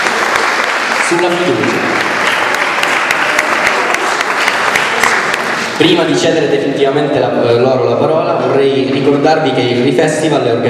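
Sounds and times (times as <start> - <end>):
audience at a university event clapping: 0.0 - 5.8
speech: 1.1 - 2.0, 5.8 - 10.6.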